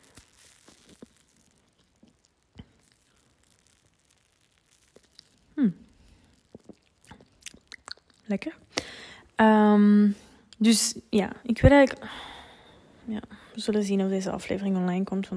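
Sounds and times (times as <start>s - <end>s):
person sipping coffee with wet clicks and lip smacks: 0.0s - 8.9s
louder slurp and swallow of coffee: 6.4s - 8.2s
speech: 8.3s - 12.3s, 13.1s - 15.3s.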